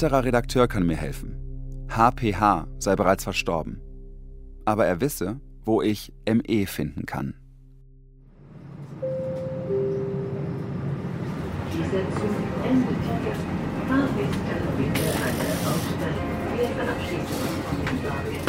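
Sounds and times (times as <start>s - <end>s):
speech: 0.0s - 3.8s, 4.7s - 7.4s
train ride rumble from Passau to Deggendorf heard inside the carriage: 8.4s - 18.4s
faint indistinct voices: 11.7s - 18.4s.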